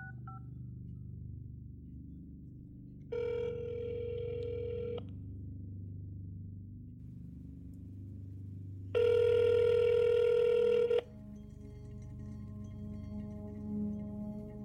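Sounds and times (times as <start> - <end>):
constant low hum: 0.0 - 14.6
telephone ringing tone on a telephone line: 3.2 - 5.0, 9.0 - 11.0.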